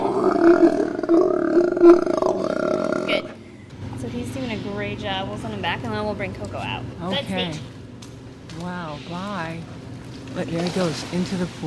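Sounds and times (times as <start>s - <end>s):
sea lion roaring: 0.0s - 3.4s
speech: 0.4s - 2.2s, 4.2s - 7.7s, 8.6s - 9.7s, 10.3s - 11.6s.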